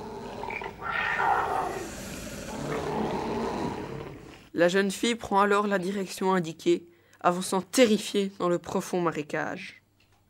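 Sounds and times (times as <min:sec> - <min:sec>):
tigers roaring angrily: 0:00.0 - 0:04.5
speech: 0:04.6 - 0:09.8.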